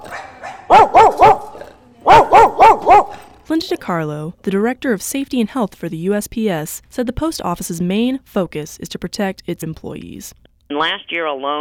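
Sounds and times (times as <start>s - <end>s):
dog barking loudly: 0.0s - 3.4s
speech: 3.6s - 11.5s.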